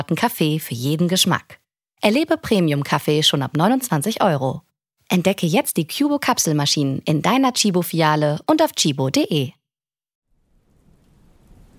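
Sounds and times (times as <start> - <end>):
speech: 0.0 - 9.6
low rumbling thunder: 10.5 - 11.7
dense steady rain in a thunderstorm: 10.6 - 11.7.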